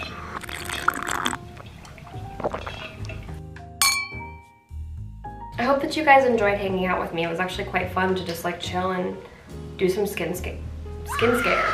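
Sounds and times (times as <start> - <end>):
person drinking water from a huge bottle: 0.0 - 3.4
huge water bottle clinking and knocking while handled: 0.1 - 3.1
speech: 5.6 - 11.7.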